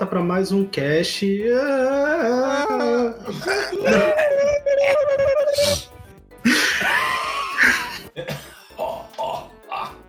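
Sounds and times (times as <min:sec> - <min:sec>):
speech: 0:00.0 - 0:05.9
laughter: 0:03.3 - 0:05.8
raspy wheezing coughing fit: 0:06.4 - 0:07.0, 0:07.6 - 0:09.9.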